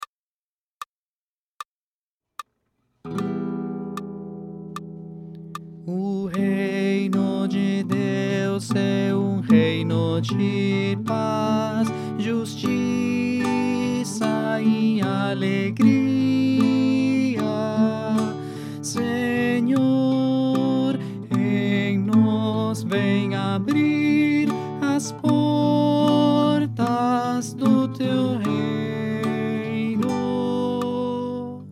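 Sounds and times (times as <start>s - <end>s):
tenor singing: 5.8s - 31.7s.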